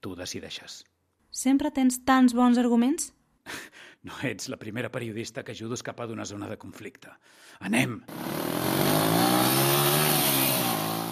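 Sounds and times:
speech: 0.0s - 9.9s
powerful large-displacement motorcycle engine revving: 8.1s - 11.1s.

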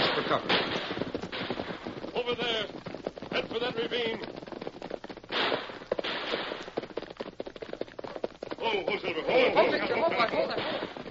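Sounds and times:
gunfire in a gunfight: 0.0s - 2.6s, 5.3s - 6.9s, 9.6s - 11.1s
speech: 0.2s - 0.8s, 3.6s - 4.4s, 8.7s - 11.0s.

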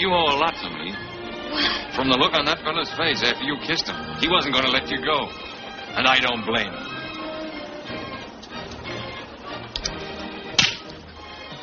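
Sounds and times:
speech: 0.0s - 6.9s
woman slapping a man across the face: 10.6s - 11.0s.

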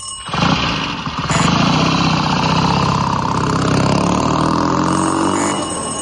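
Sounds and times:
motorcycle engine sound effect, catching then running: 0.0s - 6.0s.

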